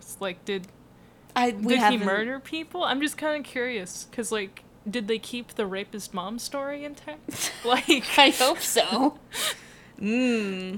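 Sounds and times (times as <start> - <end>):
speech: 0.2 - 0.8, 1.4 - 10.7
person gasping in horror: 9.3 - 10.0.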